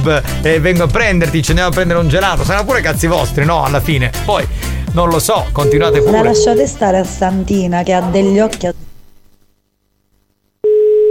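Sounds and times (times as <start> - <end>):
speech: 0.0 - 8.9
telephone ringing tone on a call: 5.6 - 6.8, 10.6 - 11.1.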